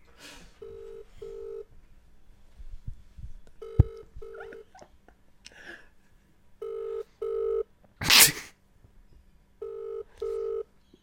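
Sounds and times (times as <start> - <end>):
double-pulse ringback tones of an outgoing phone call: 0.6 - 1.7, 3.6 - 4.6, 6.6 - 7.7, 9.6 - 10.7.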